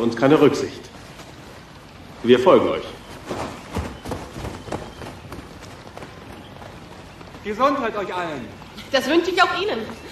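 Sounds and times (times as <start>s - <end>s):
speech: 0.0s - 0.9s, 2.2s - 3.4s, 7.5s - 10.1s
people running footsteps on a gritty outdoor surface: 0.0s - 10.1s.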